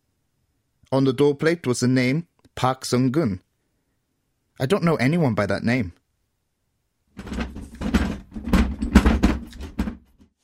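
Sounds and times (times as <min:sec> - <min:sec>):
speech: 0:00.9 - 0:03.5, 0:04.6 - 0:06.0, 0:07.2 - 0:07.4
door shut quickly, sliding and knocking into place: 0:07.2 - 0:10.1.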